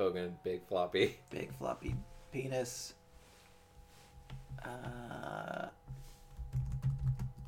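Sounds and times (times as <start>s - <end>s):
speech: 0.0s - 3.0s, 4.5s - 6.0s
brief tonal hum: 0.0s - 6.3s
typing on a computer keyboard: 6.3s - 7.4s.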